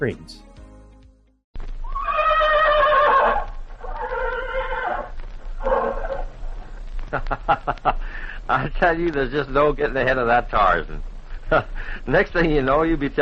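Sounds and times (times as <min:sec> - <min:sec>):
speech: 0:00.0 - 0:00.5, 0:08.6 - 0:13.1
horse whinnying: 0:01.9 - 0:06.3
laughter: 0:07.1 - 0:09.1, 0:11.4 - 0:11.8.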